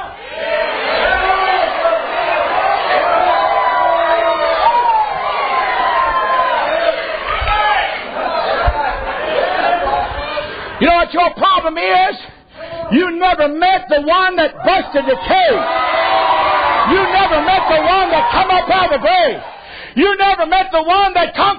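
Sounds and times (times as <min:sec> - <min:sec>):
large crowd shouting and cheering in praise: 0:00.0 - 0:10.9, 0:14.3 - 0:19.8
people whooping: 0:00.7 - 0:08.8, 0:14.7 - 0:19.7
speech: 0:11.1 - 0:12.3, 0:12.9 - 0:15.8, 0:16.9 - 0:21.5.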